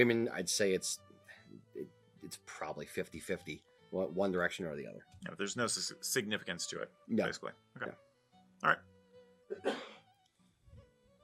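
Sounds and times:
speech: 0.0 - 8.9, 9.5 - 9.9
person coughing: 9.5 - 10.0.

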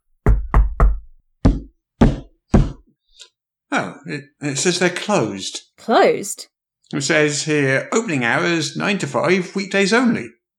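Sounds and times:
solid knocks on a wooden door: 0.3 - 2.8
speech: 3.8 - 10.4.

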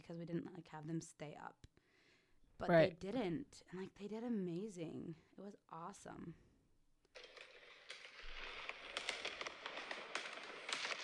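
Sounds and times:
speech: 0.1 - 1.7, 2.6 - 6.4
fireworks exploding on a street: 7.1 - 11.0.

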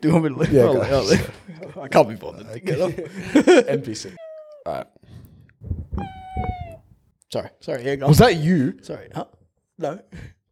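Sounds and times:
speech: 0.0 - 6.2, 7.3 - 10.4
person imitating a cat meow: 4.2 - 4.7, 5.9 - 6.8.

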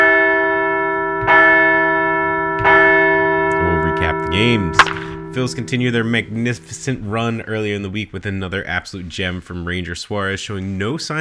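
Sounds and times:
large bell ringing: 0.0 - 8.0
speech: 4.3 - 11.2.

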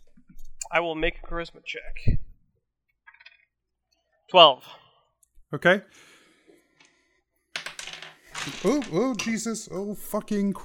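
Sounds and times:
speech: 0.7 - 2.2, 4.3 - 4.8, 5.5 - 6.1, 8.4 - 10.6
dice spilling onto a hard floor: 7.6 - 9.4.

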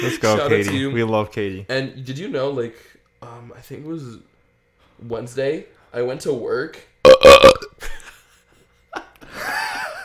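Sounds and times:
speech: 0.0 - 4.3, 5.0 - 7.4
loud deep burp: 7.0 - 7.8.

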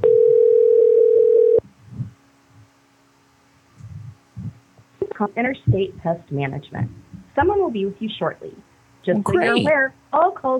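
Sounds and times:
telephone ringback tone while calling a pest control company: 0.0 - 1.6
faint low thumps: 1.6 - 2.7, 3.7 - 7.8
speech: 5.2 - 10.5.

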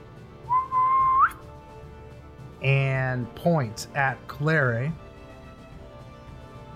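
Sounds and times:
person whistling a single sustained note sliding upward: 0.5 - 1.4
speech: 2.6 - 5.0.

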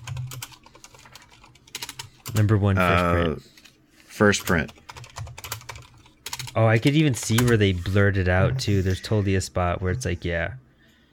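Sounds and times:
typing on a computer keyboard: 0.0 - 2.4, 4.4 - 7.6
speech: 2.4 - 3.6, 4.2 - 4.8, 6.6 - 10.6.

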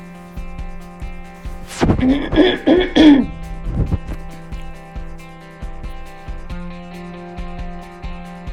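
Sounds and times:
steady low hum: 0.6 - 8.5
person clearing throat: 2.1 - 3.3.

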